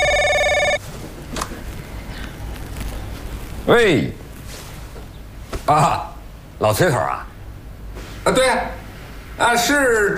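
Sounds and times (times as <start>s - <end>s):
telephone ringing: 0.0s - 0.8s
speech: 3.7s - 4.2s, 5.7s - 7.3s, 8.2s - 8.8s, 9.4s - 10.1s.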